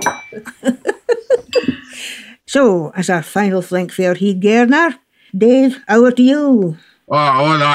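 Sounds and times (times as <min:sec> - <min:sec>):
glasses clinking in a toast: 0:00.0 - 0:00.6, 0:01.3 - 0:01.9
laughter: 0:00.3 - 0:01.8
speech: 0:02.5 - 0:07.7.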